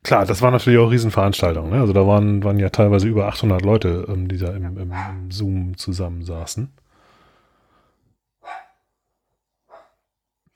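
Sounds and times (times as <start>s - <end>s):
speech: 0.1s - 6.8s
small pet dog yelping: 4.9s - 5.2s, 8.4s - 8.8s.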